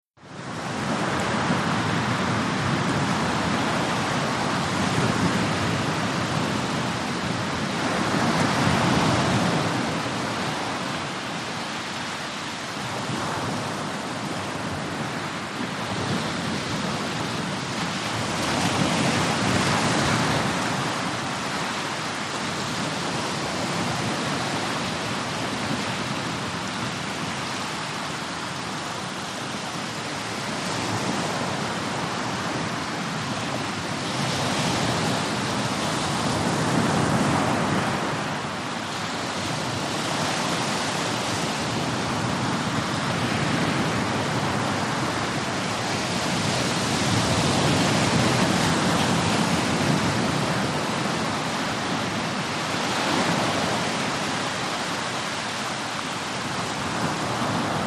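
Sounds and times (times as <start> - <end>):
medium surf on a wide beach: 0.2 - 57.8.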